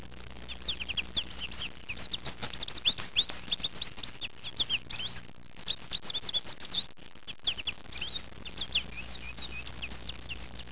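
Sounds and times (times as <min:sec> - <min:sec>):
faint low hum: 0:00.0 - 0:10.7
goldfinch twittering: 0:00.5 - 0:10.7.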